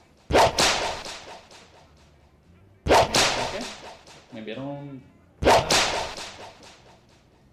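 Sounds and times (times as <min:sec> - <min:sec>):
loud sharp whip cracks: 0:00.1 - 0:02.1, 0:02.9 - 0:04.4, 0:05.4 - 0:07.1
speech: 0:04.3 - 0:05.8.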